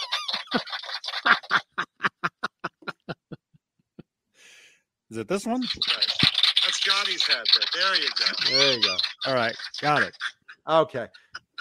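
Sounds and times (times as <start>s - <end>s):
laughter: 0.0s - 3.4s, 5.6s - 11.6s
speech: 0.5s - 0.8s, 5.1s - 6.2s, 6.8s - 11.2s
toy duck in a guitar headstock honking: 5.8s - 10.2s.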